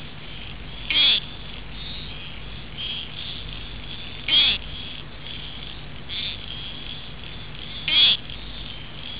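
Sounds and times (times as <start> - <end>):
east froglet: 0.0 - 9.1.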